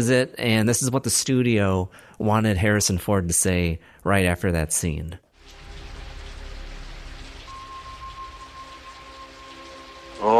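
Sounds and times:
speech: 0.0s - 5.2s
heavy rain pouring: 5.4s - 10.3s
faint sustained electronic tone: 5.5s - 10.3s.

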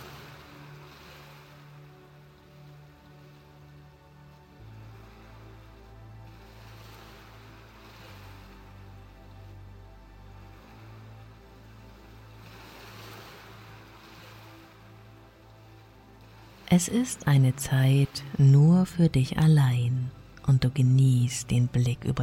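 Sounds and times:
soft ocean waves washing onto the shore: 0.0s - 22.2s
steady low humming drone: 0.0s - 22.2s
speech: 16.7s - 22.2s.

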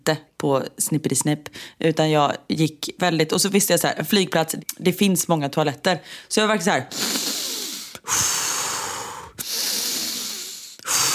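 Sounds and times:
speech: 0.1s - 7.5s, 8.1s - 8.3s
person taking slow deep exaggerated breaths: 6.9s - 11.1s.

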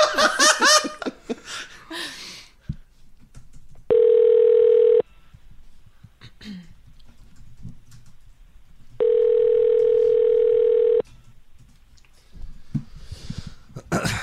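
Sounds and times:
laughter: 0.0s - 1.8s
long steady ringback tones of an outgoing phone call: 3.9s - 5.1s, 9.0s - 11.0s.

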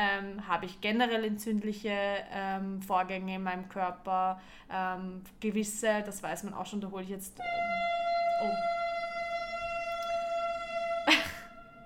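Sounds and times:
speech: 0.0s - 8.8s
passing train horn blaring: 7.4s - 11.8s.

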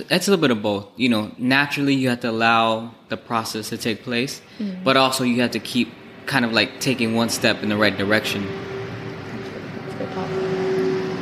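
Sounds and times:
speech: 0.0s - 8.7s
broad traffic noise: 4.4s - 11.2s
diesel truck driving by on a busy street: 4.6s - 11.2s.

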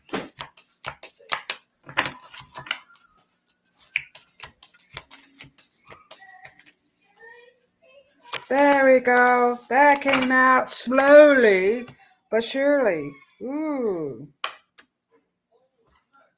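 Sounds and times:
deck of cards shuffling: 0.0s - 6.8s, 8.3s - 11.9s
speech: 8.5s - 14.3s.

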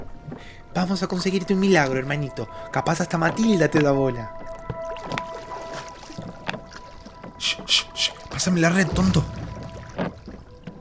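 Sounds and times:
speech: 0.4s - 5.2s, 8.4s - 9.4s
river water gently lapping: 2.2s - 10.7s
paddle splashes and knocks of a small boat on a river: 4.4s - 10.7s.

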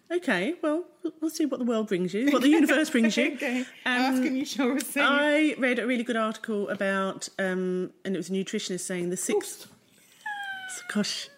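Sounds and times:
speech: 0.1s - 9.8s, 10.8s - 11.3s
cat yowling: 10.2s - 11.3s.

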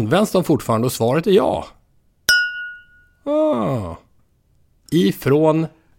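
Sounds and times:
speech: 0.0s - 1.8s, 3.2s - 4.0s, 4.9s - 5.8s
bell strike as podcast sound effect: 2.3s - 3.1s
groaning vocal sound sliding downward in pitch: 3.3s - 4.1s.

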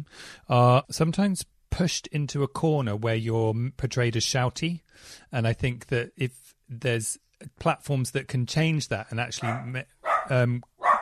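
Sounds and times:
speech: 0.0s - 10.7s
dog barking: 9.4s - 11.0s.

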